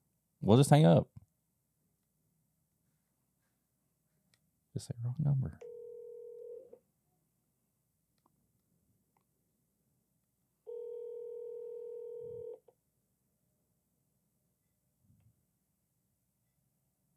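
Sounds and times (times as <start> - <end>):
speech: 0.4 - 1.1, 4.8 - 5.7
low buzzing tones over a phone line: 5.7 - 6.6, 10.7 - 12.6.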